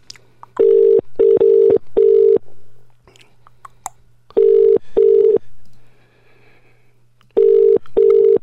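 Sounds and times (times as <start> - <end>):
mobile phone call ringing tones before voicemail: 0.6 - 2.4, 4.4 - 5.4, 7.4 - 8.4.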